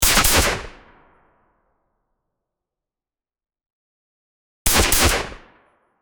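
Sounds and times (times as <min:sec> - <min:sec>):
airsoft weapon single shot: 0:00.0 - 0:00.8, 0:04.7 - 0:05.5.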